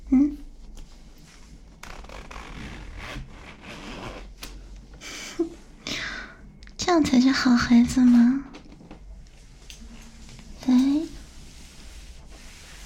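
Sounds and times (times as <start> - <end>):
soft fabric rustling: 0.6 - 4.8, 8.0 - 12.8
zipper pulled open in short raspy strokes: 1.8 - 4.4
speech: 6.9 - 8.5.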